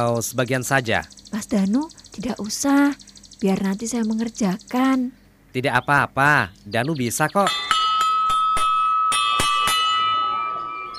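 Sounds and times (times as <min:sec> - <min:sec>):
speech: 0:00.0 - 0:07.6
school bell ringing with a high metallic tone: 0:07.4 - 0:10.9.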